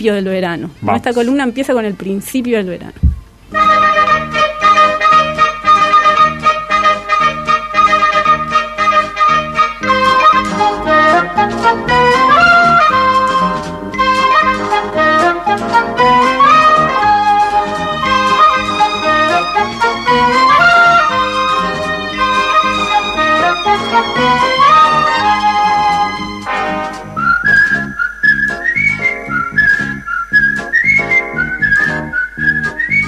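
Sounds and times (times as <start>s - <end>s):
speech: 0.0s - 3.9s
full instrumental backing: 0.0s - 33.0s
whistled TV series theme tune: 3.6s - 33.0s.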